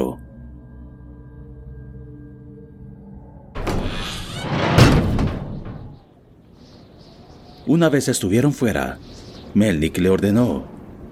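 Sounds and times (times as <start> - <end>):
heavy door grinding shut with a solid thud: 3.6 - 6.1
speech: 7.7 - 10.7.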